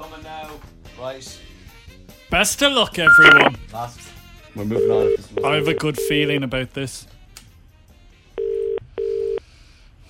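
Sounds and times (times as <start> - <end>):
speech: 0.2 - 1.6, 2.3 - 7.1
outgoing telephone ringing tone over the line: 3.1 - 3.6, 4.8 - 6.2, 8.4 - 9.4.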